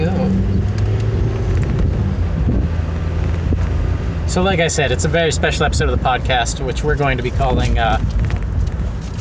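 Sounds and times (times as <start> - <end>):
wind buffeting the microphone: 0.0 - 4.3, 6.8 - 9.1
car being driven on the road: 0.0 - 9.1
speech: 4.4 - 8.2.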